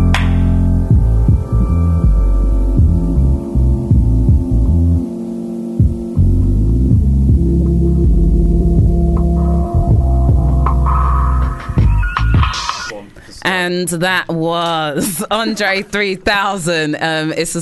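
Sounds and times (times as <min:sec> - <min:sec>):
hip-hop remix with deep throbbing bass: 0:00.1 - 0:05.2, 0:05.7 - 0:13.4
speech: 0:13.7 - 0:17.5.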